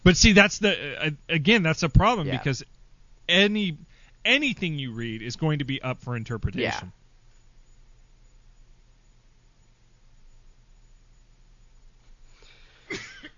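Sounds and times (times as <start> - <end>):
speech: 0.1 - 7.0
person coughing: 12.9 - 13.3.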